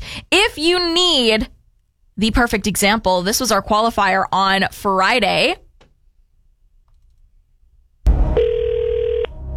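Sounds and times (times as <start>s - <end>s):
speech: 0.3s - 1.6s, 2.2s - 5.6s
steady electronic telephone tone: 8.4s - 9.4s.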